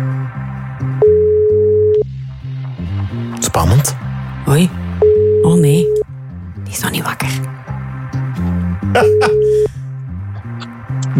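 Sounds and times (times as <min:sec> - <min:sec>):
continuous tonal background: 0:00.0 - 0:11.1
telephone ringback tone on an outgoing call: 0:01.0 - 0:02.0, 0:05.0 - 0:06.0
speech: 0:03.8 - 0:04.0, 0:04.6 - 0:04.8.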